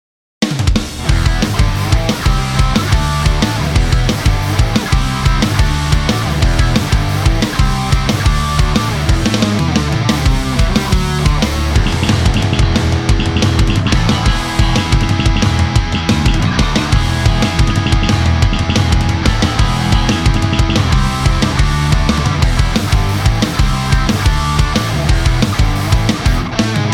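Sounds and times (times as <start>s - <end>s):
rock music: 0.4s - 26.9s.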